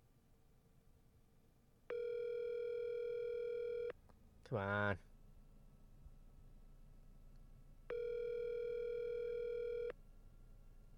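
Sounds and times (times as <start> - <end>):
electronic phone ringback tone on an outgoing call: 1.9 - 3.9, 7.9 - 9.9
speech: 4.5 - 5.1.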